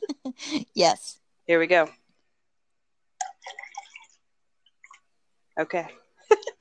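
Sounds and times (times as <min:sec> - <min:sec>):
speech: 0:00.4 - 0:02.0, 0:05.6 - 0:06.0
tea pouring into a cup: 0:03.2 - 0:04.2.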